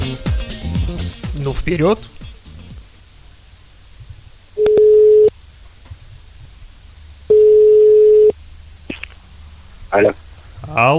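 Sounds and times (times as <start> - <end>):
speech: 1.4 - 2.2, 10.0 - 10.2, 10.8 - 10.9
faint clicks on the telephone line: 4.6 - 4.9
telephone ringback tone while a call is being dialed: 4.6 - 5.3, 7.3 - 8.3.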